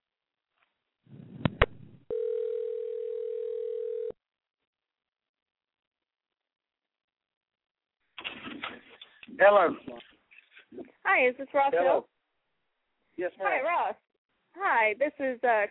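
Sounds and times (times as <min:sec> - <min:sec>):
telephone dial tone: 0:02.1 - 0:04.2
speech: 0:09.4 - 0:10.1, 0:10.8 - 0:12.1, 0:13.2 - 0:14.0, 0:14.6 - 0:15.7.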